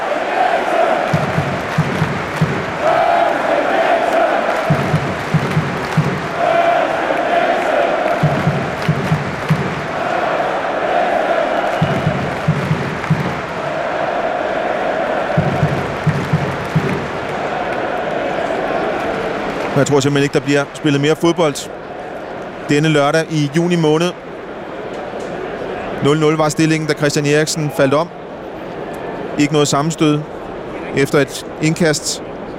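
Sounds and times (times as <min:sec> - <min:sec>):
large football stadium crowd clapping in rhythmic unison: 0:00.0 - 0:21.5
speech: 0:19.8 - 0:21.8, 0:22.7 - 0:24.3, 0:26.0 - 0:28.2, 0:29.4 - 0:32.3.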